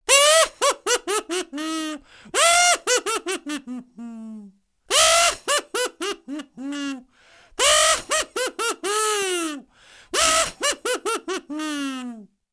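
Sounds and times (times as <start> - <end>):
creepy laugh: 0.2 - 12.3.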